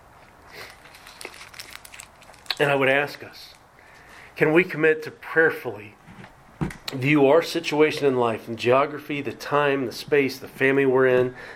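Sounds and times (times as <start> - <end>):
cough drop wrapper crinkling while handled: 0.3 - 4.0
speech: 2.6 - 3.6, 4.4 - 6.0, 6.9 - 11.5.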